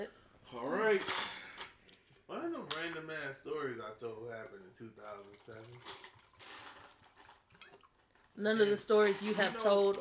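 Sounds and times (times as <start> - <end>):
speech: 0.0 - 1.3, 2.5 - 6.2, 8.4 - 9.9
tequila poured into a glass while making a drink: 5.0 - 8.4.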